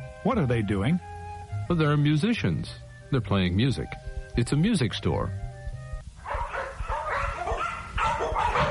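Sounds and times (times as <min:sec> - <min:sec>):
speech: 0:00.3 - 0:01.1, 0:01.7 - 0:05.4
dog barking in a pet shop: 0:06.2 - 0:08.6.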